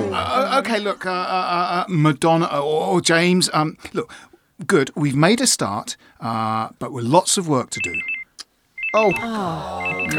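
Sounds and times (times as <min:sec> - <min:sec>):
speech: 0:00.2 - 0:08.2, 0:08.9 - 0:10.1
mobile phone ringtone with electronic beeps and warbling melodic tone: 0:07.8 - 0:08.2, 0:08.8 - 0:10.1.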